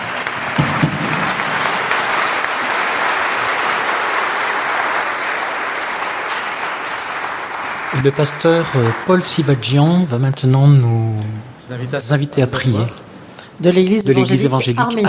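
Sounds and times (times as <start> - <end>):
church congregation applauding: 0.0 - 10.7
speech: 8.0 - 13.0, 13.6 - 15.0.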